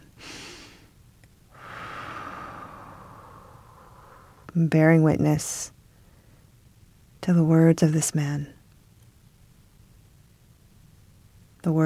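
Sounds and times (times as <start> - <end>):
breathing: 1.5 - 4.5, 5.9 - 6.5
speech: 4.5 - 5.8, 7.2 - 8.6, 11.6 - 11.8.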